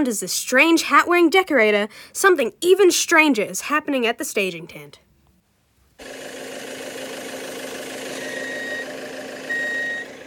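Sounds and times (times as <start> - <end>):
speech: 0.0 - 5.1
large vehicle engine rumbling while reversing: 6.0 - 10.2
high electronic backup beep of a reversing vehicle: 8.1 - 10.2.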